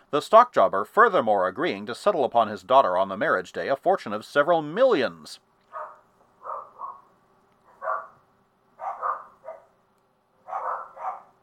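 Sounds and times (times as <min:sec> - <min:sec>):
faint steady hum: 0:00.0 - 0:11.4
speech: 0:00.1 - 0:05.5
several dogs barking: 0:05.7 - 0:08.2, 0:08.8 - 0:09.8, 0:10.4 - 0:11.4.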